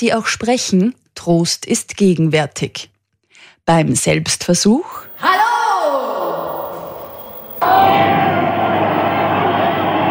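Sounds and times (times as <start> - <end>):
speech: 0.0 - 2.9, 3.7 - 6.1, 7.6 - 8.4
crowd cheering and applauding from a television: 7.6 - 10.1.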